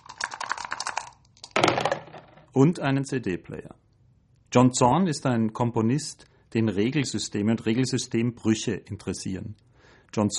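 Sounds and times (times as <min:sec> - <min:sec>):
single die rattling inside a dice cup: 0:00.0 - 0:02.5
speech: 0:02.6 - 0:03.8, 0:04.5 - 0:10.3.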